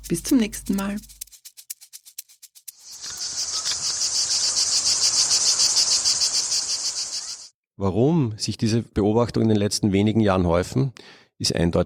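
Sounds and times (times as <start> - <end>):
cicadas buzzing: 0.0 - 7.5
speech: 0.1 - 1.2, 7.8 - 11.8.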